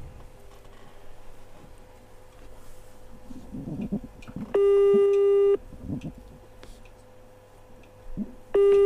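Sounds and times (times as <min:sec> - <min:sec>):
low hum: 0:00.0 - 0:08.8
telephone busy signal during a prize call: 0:04.5 - 0:05.6, 0:08.6 - 0:08.8.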